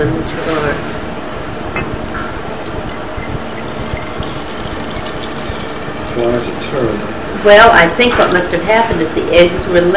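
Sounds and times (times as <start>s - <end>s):
speech: 0.0s - 0.8s, 7.4s - 9.9s
liquid pouring from a bottle: 2.6s - 6.2s.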